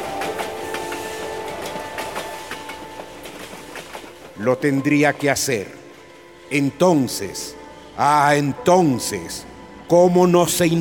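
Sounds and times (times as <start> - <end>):
steam locomotive wheels clickety-clack over rail joints: 0.0 - 5.5
steam locomotive climbing hills, mechanical rumble: 0.0 - 6.5
speech: 4.4 - 5.8, 6.5 - 10.7.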